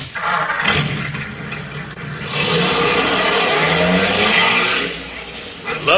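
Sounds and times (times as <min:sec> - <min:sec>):
car engine revving and accelerating: 0:00.6 - 0:05.9.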